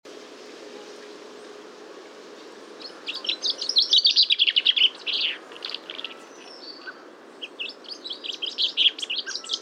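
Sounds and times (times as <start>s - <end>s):
common chaffinch Fringilla coelebs song: 2.8s - 9.5s.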